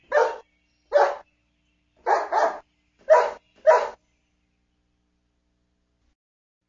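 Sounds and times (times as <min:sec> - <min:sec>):
dogs barking: 0:00.0 - 0:01.2, 0:02.0 - 0:04.0.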